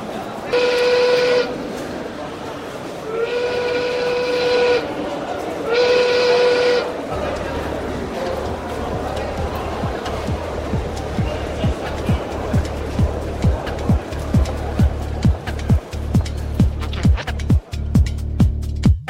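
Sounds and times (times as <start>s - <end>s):
train whistle blasts: 0.5s - 1.6s, 3.0s - 7.1s
train pulling away from a station platform: 0.5s - 19.0s.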